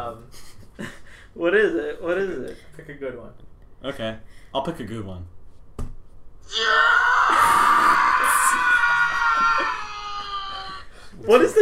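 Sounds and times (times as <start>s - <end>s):
speech: 0.1s - 5.4s, 6.5s - 7.6s, 11.2s - 11.5s
man screaming: 6.4s - 11.0s.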